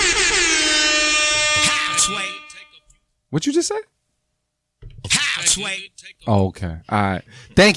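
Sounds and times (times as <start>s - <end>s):
loud sustained air horn blast: 0.0s - 2.8s
speech: 3.3s - 4.0s, 5.4s - 7.7s.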